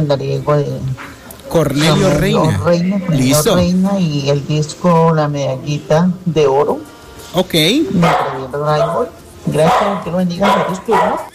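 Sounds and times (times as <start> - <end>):
speech: 0.0 - 11.3
dog barking in drawn-out howl-like bursts: 8.0 - 11.3.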